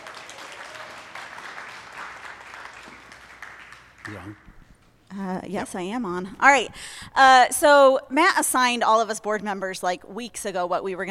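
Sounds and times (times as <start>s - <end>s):
audience applause: 0.0s - 4.4s
speech: 4.0s - 4.5s, 5.1s - 11.0s.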